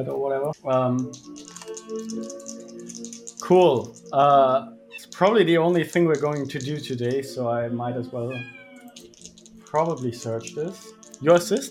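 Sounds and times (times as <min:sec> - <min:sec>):
speech: 0:00.0 - 0:02.4, 0:03.5 - 0:08.6, 0:09.7 - 0:11.7
physical dice tumbling across a tabletop: 0:01.0 - 0:04.2, 0:05.1 - 0:07.2, 0:08.9 - 0:11.7.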